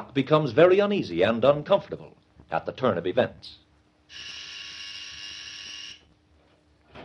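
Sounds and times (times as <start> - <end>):
speech: 0.0 - 4.4
loud harsh electric call buzzer droning: 4.1 - 6.1.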